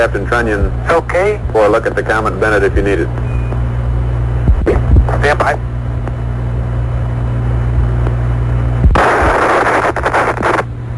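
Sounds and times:
speech: 0:00.0 - 0:03.2, 0:05.2 - 0:05.7
steady low hum: 0:00.0 - 0:10.9
harsh roaring noise: 0:08.8 - 0:10.7
loud explosion: 0:08.9 - 0:10.6.

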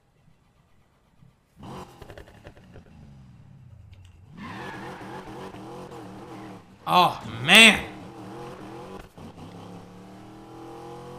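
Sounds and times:
muscle car engine turning over, catching into a deep rumble and revving: 0:01.6 - 0:06.8, 0:08.0 - 0:11.1
speech: 0:06.9 - 0:07.9
man exclaiming: 0:06.9 - 0:08.0.

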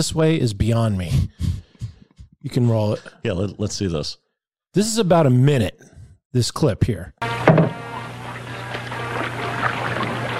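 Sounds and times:
speech: 0:00.0 - 0:01.5, 0:02.4 - 0:07.7
boat thudding against a dock: 0:07.2 - 0:10.3
steady low motor hum: 0:07.2 - 0:10.3
water sloshing: 0:07.4 - 0:10.3.

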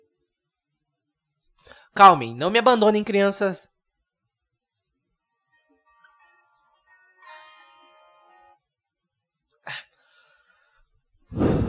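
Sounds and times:
speech: 0:01.9 - 0:03.7
deep breathing: 0:09.9 - 0:11.6
drawn-out voiced sighing: 0:11.3 - 0:11.6.

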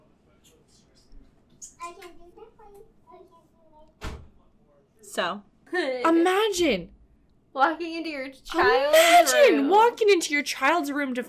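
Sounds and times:
speech: 0:01.9 - 0:04.3, 0:05.0 - 0:07.0, 0:07.6 - 0:11.2
door shutting: 0:04.0 - 0:04.4.

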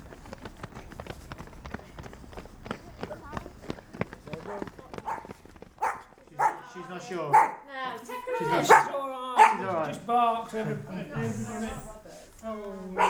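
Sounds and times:
dog barking: 0:04.4 - 0:06.6, 0:07.3 - 0:07.7, 0:08.5 - 0:09.7
speech: 0:07.0 - 0:13.0.

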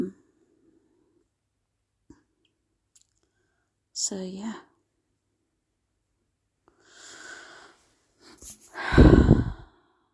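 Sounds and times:
speech: 0:04.0 - 0:04.7
heavy breathing against the microphone: 0:06.8 - 0:09.9.

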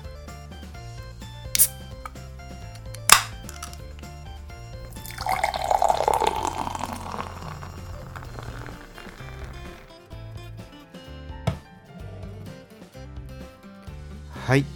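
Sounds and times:
wheat beer glugging and splashing as poured from a can into a glass: 0:04.8 - 0:09.9
beer foam crackling: 0:04.9 - 0:09.9.

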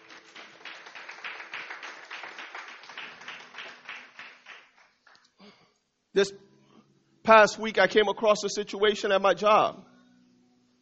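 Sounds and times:
audience clapping: 0:00.0 - 0:05.4
speech: 0:06.2 - 0:06.5, 0:07.2 - 0:09.8.

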